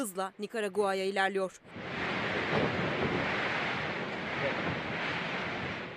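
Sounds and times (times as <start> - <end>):
speech: 0.0 - 2.9
hurricane wind buffeting the microphone: 1.7 - 5.9
waves crashing in a hurricane: 1.7 - 5.9.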